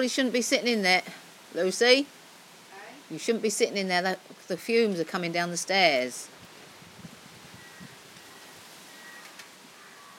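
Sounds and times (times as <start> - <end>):
speech: 0.0 - 2.2, 3.1 - 6.4
leaves rustling: 0.0 - 10.1
strong wind blowing outdoors: 6.3 - 9.2.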